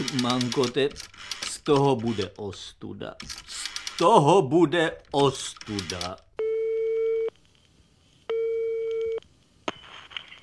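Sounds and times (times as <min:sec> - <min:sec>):
speech: 0:00.1 - 0:06.2
steady electronic telephone ringing tone on the line: 0:08.3 - 0:09.2.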